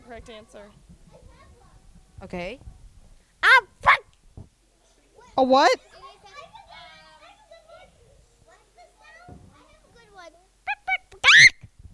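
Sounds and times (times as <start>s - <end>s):
speech: 0.1s - 1.0s, 2.2s - 2.7s, 5.4s - 6.0s
person imitating a chicken in a high childlike voice: 10.7s - 11.5s.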